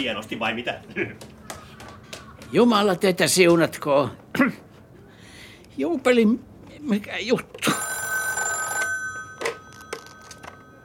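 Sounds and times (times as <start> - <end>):
speech: 0.0 - 1.4, 2.5 - 4.6, 5.8 - 7.9
telephone bell ringing: 7.6 - 10.8
clicks and clunks of telephone handset being picked up: 7.7 - 10.8.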